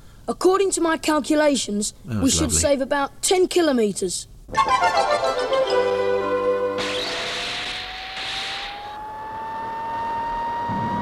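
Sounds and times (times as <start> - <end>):
speech: 0.3 - 6.1
car engine roaring as the car accelerates away: 6.8 - 10.9.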